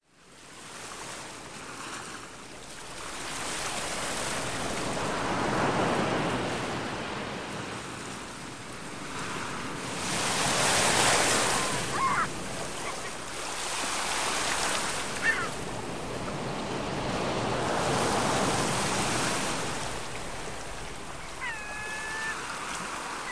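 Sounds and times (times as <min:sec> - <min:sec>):
tranquil sea: 0:00.0 - 0:23.3.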